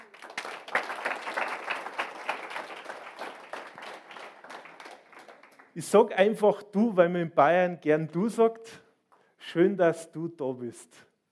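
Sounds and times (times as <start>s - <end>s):
audience at a healing church service applauding: 0.0s - 5.8s
speech: 5.8s - 8.8s, 9.5s - 11.1s.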